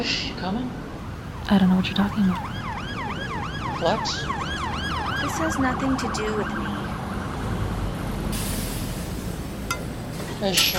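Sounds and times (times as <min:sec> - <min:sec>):
speech: 0:00.0 - 0:00.8, 0:01.5 - 0:02.6, 0:03.8 - 0:04.4, 0:05.2 - 0:06.7, 0:10.4 - 0:10.7
heavy vehicles rumbling on a busy street: 0:00.0 - 0:10.7
air brakes hissing: 0:08.3 - 0:09.5.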